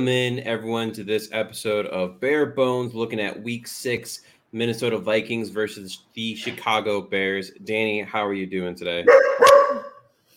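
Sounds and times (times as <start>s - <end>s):
speech: 0.0s - 9.8s
dog barking: 9.1s - 10.1s.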